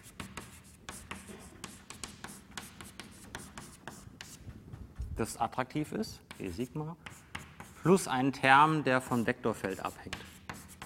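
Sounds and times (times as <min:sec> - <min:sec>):
handwriting during a lecture on nuclear interactions: 0:00.0 - 0:04.5, 0:06.2 - 0:08.0, 0:09.5 - 0:10.8
speech: 0:05.2 - 0:07.1, 0:07.8 - 0:10.3.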